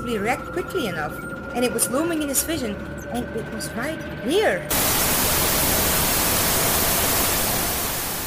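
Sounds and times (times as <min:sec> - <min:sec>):
speech: 0:00.1 - 0:05.0
loud hissing static from a data tablet's eyepiece: 0:04.7 - 0:08.2.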